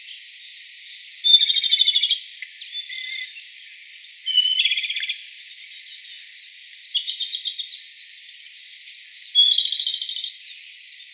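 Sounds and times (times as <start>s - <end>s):
Japanese robin singing sharp high notes and rapid clattering trills: 1.2s - 3.4s, 4.3s - 11.1s.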